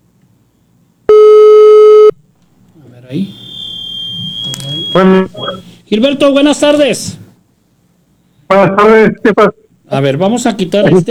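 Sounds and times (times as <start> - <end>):
telephone line tone while dialing a call: 1.1 - 2.2, 3.3 - 5.7
speech: 3.1 - 3.4, 4.9 - 7.2, 8.5 - 11.0
faint high-pitched telephone tone: 3.2 - 5.7.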